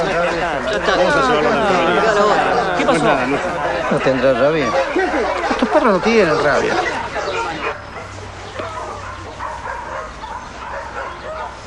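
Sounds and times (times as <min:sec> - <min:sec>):
laughter: 0:00.0 - 0:07.8
speech: 0:00.4 - 0:07.0
fierce-tempered dogo barking and yipping: 0:03.7 - 0:11.6.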